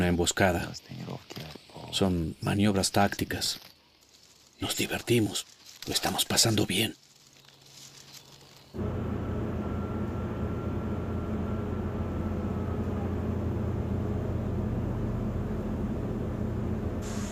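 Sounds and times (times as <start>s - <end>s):
speech: 0.0s - 1.0s, 1.9s - 3.7s, 4.6s - 7.0s
military airplane cabin roar in flight, engine and airflow drone: 8.8s - 17.3s.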